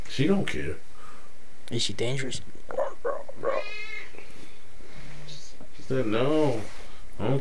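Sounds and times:
faint hum: 0.0s - 7.4s
speech: 0.2s - 0.9s, 1.7s - 2.8s, 5.9s - 7.4s
cat chirping and meowing: 3.4s - 4.2s.

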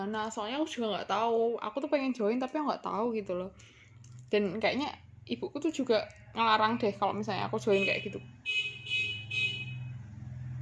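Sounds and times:
speech: 0.0s - 8.6s
street vendor's horn tooting high-pitched: 7.7s - 10.0s.

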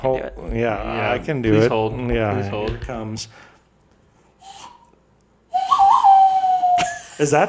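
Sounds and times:
speech: 0.0s - 3.5s, 7.2s - 7.4s
person whistling a Western-style movie theme: 4.4s - 4.9s, 5.5s - 7.0s.

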